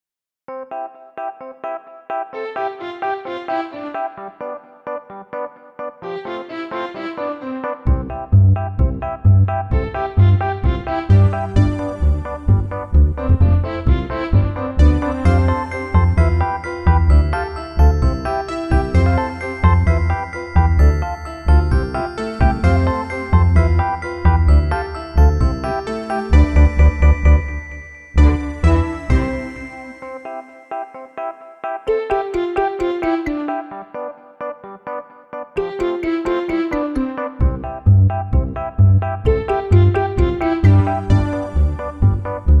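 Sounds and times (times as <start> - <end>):
upbeat music without drums: 7.8 - 31.2, 31.8 - 33.9, 35.6 - 42.5.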